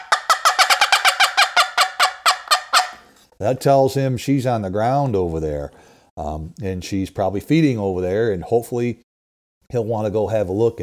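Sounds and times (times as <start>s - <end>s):
hunter imitating a turkey hen's fly-down cackle: 0.0s - 3.1s
speech: 3.4s - 9.0s, 9.7s - 10.8s.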